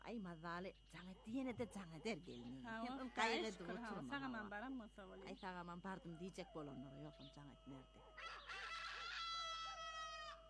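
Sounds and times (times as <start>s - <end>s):
speech: 0.0s - 8.3s
rooster crowing: 6.0s - 10.4s.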